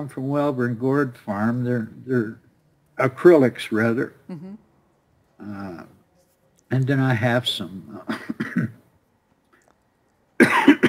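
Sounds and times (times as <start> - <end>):
speech: 0.0 - 2.4, 3.0 - 4.6, 5.4 - 6.0, 6.7 - 8.8
person coughing from a tickle in the throat: 8.1 - 8.8, 10.4 - 10.8
throat clearing: 8.1 - 8.8, 10.4 - 10.8.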